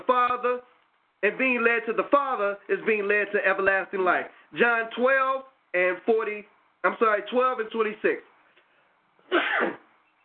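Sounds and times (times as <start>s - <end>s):
speech: 0.1s - 8.3s, 9.3s - 9.8s
loud sneeze: 9.2s - 9.9s.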